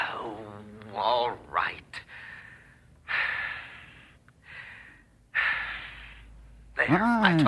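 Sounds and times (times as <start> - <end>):
speech: 0.3 - 2.0, 6.9 - 7.4
deep audible breaths: 2.0 - 6.7.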